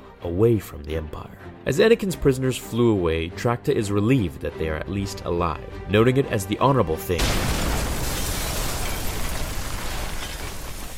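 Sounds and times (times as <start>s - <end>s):
speech: 0.2s - 7.6s
shuttle explosion in the sky: 7.2s - 10.9s.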